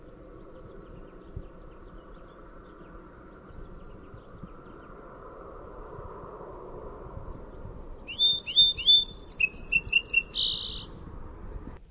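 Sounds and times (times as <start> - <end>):
song sparrow song: 0.0 - 5.2, 7.2 - 11.8
low steady hum: 0.0 - 11.9.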